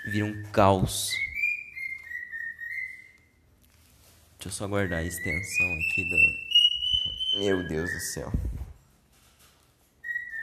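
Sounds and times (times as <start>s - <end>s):
speech: 0.0s - 1.3s, 4.4s - 6.5s, 7.4s - 8.6s
pet bird screeching: 1.1s - 3.3s, 5.0s - 8.2s, 10.0s - 10.4s.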